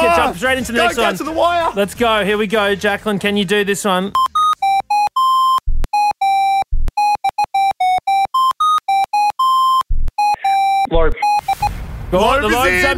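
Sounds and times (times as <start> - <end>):
speech: 0.3 - 4.3, 12.1 - 12.9
phone ringtone playing a rap song: 4.1 - 11.7.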